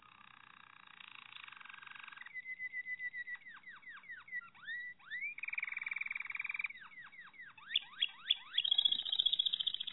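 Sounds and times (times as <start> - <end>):
Malinois Waterslager canary singing: 2.2 - 9.9.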